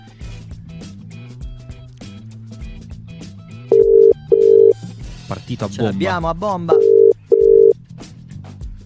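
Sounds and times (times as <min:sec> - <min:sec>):
ringback tone of an outgoing phone call to London: 0:03.7 - 0:04.8, 0:06.7 - 0:07.8
speech: 0:05.5 - 0:07.0.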